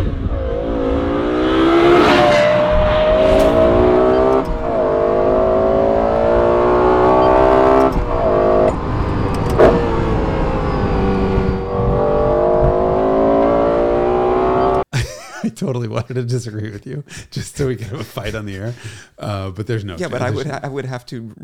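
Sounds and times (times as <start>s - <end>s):
Lexus LFA V10 engine revving: 0.0s - 14.8s
speech: 15.7s - 21.4s.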